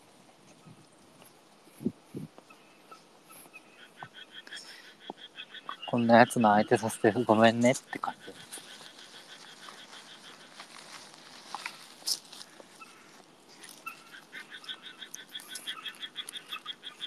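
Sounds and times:
outdoor chorus of frogs croaking: 0.0s - 17.0s
speech: 6.0s - 8.3s.

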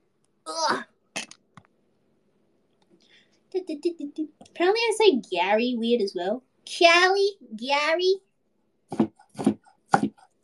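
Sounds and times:
speech: 3.7s - 8.3s
knife with a slightly dull blade chopping minced garlic on a cutting board: 8.9s - 10.4s.

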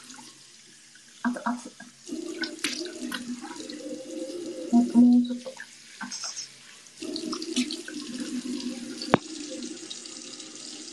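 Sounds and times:
tap water running while someone washes their face at a sink: 0.0s - 10.9s
water splashes while washing face: 1.0s - 3.9s, 4.7s - 9.6s
speech: 1.2s - 1.8s, 4.7s - 5.6s.

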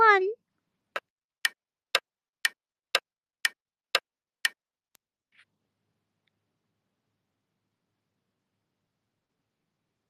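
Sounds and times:
clock ticking: 1.0s - 4.6s.

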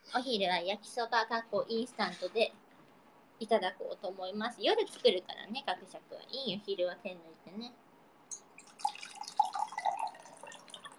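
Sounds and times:
speech: 0.1s - 2.6s, 3.4s - 7.8s
tea pouring into a cup: 8.6s - 10.9s.

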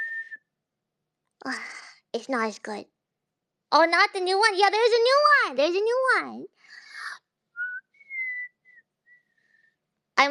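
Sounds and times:
person lying down whistling: 0.0s - 0.5s, 7.6s - 9.4s
speech: 1.4s - 3.0s, 3.7s - 6.8s.

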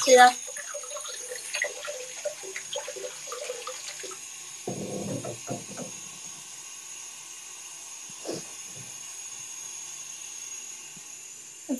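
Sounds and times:
clinks and splashes: 0.0s - 5.9s
water running from a faucet into a container: 0.0s - 7.2s.

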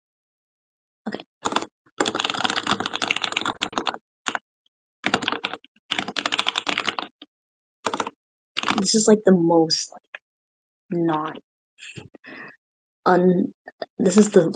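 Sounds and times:
speech: 1.0s - 1.3s, 8.8s - 10.2s, 10.9s - 12.4s, 13.0s - 14.5s
fingers typing on a computer keyboard: 1.1s - 4.4s, 5.0s - 7.2s, 7.8s - 8.8s.

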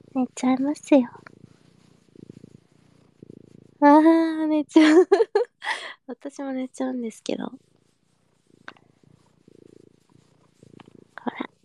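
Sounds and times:
pet cat purring while being stroked: 0.0s - 5.6s, 6.3s - 11.6s
speech: 0.2s - 1.3s, 4.0s - 7.7s.

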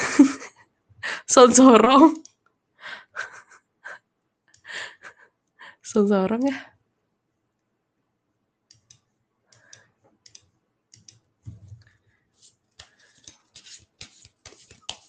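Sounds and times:
speech: 0.2s - 0.5s, 1.3s - 2.3s, 5.9s - 6.7s
deck of playing cards being shuffled: 12.4s - 15.0s.

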